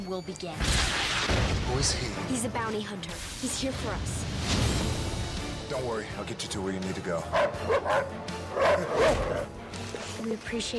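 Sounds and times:
speech: 0.0s - 4.8s, 5.7s - 10.7s
dog barking and yipping: 7.3s - 9.5s.

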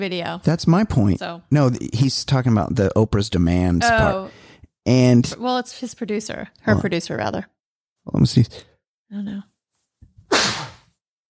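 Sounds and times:
speech: 0.0s - 9.5s
person sneezing: 10.3s - 10.8s.

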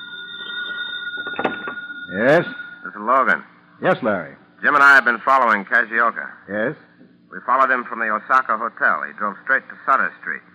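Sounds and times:
telephone ringing: 0.0s - 3.3s
speech: 2.1s - 10.5s.

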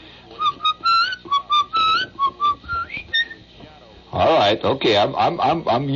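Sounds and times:
person whistling a short melodic tune: 0.4s - 3.4s
speech: 4.2s - 5.9s.

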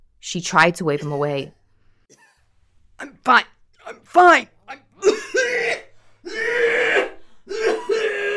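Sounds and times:
speech: 0.2s - 1.6s, 3.0s - 4.8s
woman coughing violently in a restaurant: 5.0s - 8.3s.

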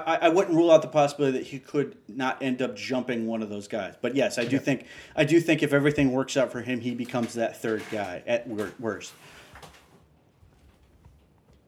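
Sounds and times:
speech: 0.0s - 9.4s
wooden chair creaking as a man rocks in it: 6.8s - 11.6s.

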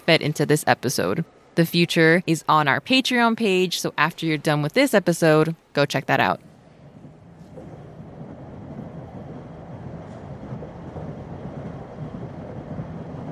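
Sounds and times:
speech: 0.1s - 6.5s
train rolling along the tracks with rumbling clatter: 6.5s - 13.3s.

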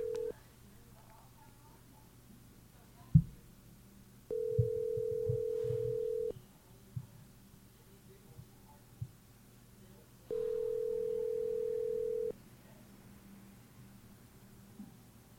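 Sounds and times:
phone call ringback tones: 0.0s - 0.3s, 4.3s - 6.3s, 10.3s - 12.3s
low hum: 0.0s - 15.3s.

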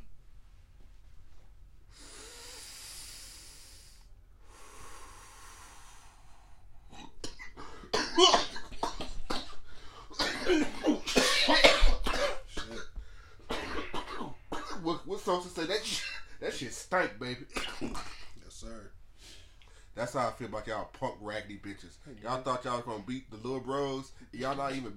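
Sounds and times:
hissing inhales of smoke: 1.9s - 6.8s
harsh loud coughing after inhaling smoke: 6.9s - 16.6s, 17.4s - 18.4s
speech: 15.3s - 18.8s, 20.0s - 24.9s.

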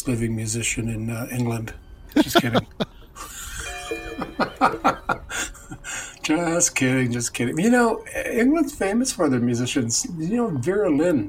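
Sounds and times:
speech: 0.0s - 3.3s, 3.9s - 5.5s, 6.3s - 11.2s
person chuckling: 2.1s - 6.0s
funeral bells ringing: 2.1s - 6.8s.

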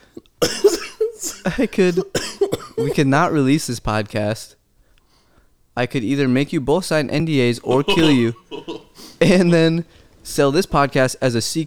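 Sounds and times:
person coughing in the middle of a stifled laugh: 0.0s - 3.0s, 7.7s - 9.2s
speech: 1.4s - 4.6s, 5.8s - 11.6s
stifled, held-back laughter with breathy snorts: 7.6s - 9.4s.

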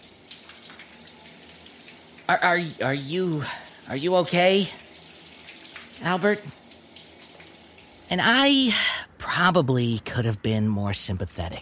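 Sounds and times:
shower water spraying and splashing: 0.0s - 8.8s
speech: 2.3s - 4.8s, 6.0s - 6.6s, 8.1s - 11.5s.

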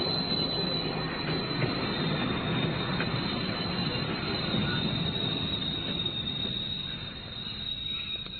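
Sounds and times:
train rumbling past below a house window: 0.0s - 8.3s.

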